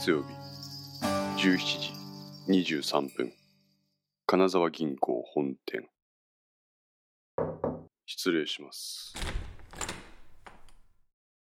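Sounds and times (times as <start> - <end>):
speech: 0.0 - 0.4, 1.4 - 3.4, 4.3 - 5.9, 8.1 - 9.3
knocking on an office door at a bank's head office: 7.4 - 7.9
office door rattling as it is opened: 9.1 - 11.0.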